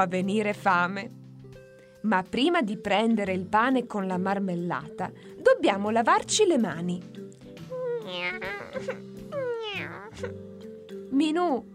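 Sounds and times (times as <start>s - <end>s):
speech: 0.0s - 1.2s, 2.0s - 7.4s, 8.1s - 10.5s, 11.1s - 11.7s
cat meowing: 9.3s - 10.3s.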